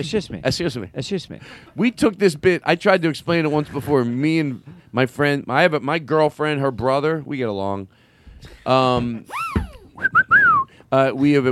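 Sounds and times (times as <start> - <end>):
speech: 0.0 - 9.4, 10.0 - 10.3, 10.9 - 11.5
slide whistle: 9.3 - 10.7.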